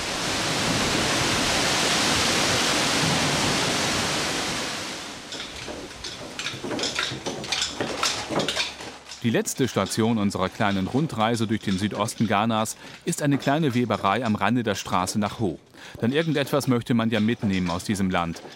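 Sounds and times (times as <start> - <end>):
tall waterfall plunging about 60 meters: 0.0 - 6.2
scattered splashing and clattering: 5.1 - 18.5
speech: 9.2 - 18.5.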